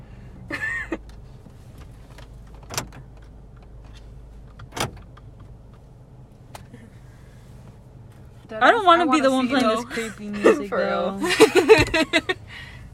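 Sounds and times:
car engine idling hum: 0.0 - 12.9
car door locks clunking and clicking: 1.8 - 5.8
speech: 8.5 - 12.7
laughter: 11.2 - 12.4.

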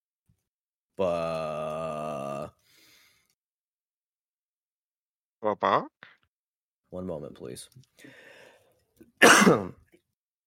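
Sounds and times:
speech: 1.0 - 1.5, 5.4 - 6.0, 6.9 - 8.4, 9.0 - 9.8
harsh rasping cough: 9.2 - 9.9.

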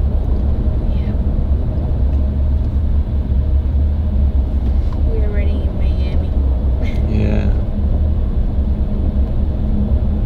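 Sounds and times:
car engine and road noise inside a car moving through traffic in Miami: 0.0 - 10.2
faint indistinct murmurs: 6.8 - 7.6.

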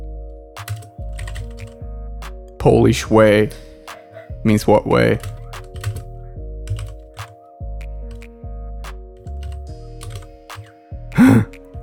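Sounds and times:
computer keyboard typing: 0.5 - 2.6, 5.1 - 10.9
speech: 2.6 - 3.7, 4.4 - 5.4.

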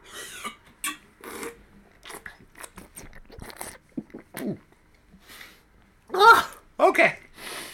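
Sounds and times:
crunchy chewing of ramen: 1.2 - 4.6
ramen slurping: 1.2 - 4.6
speech: 4.5 - 4.7.

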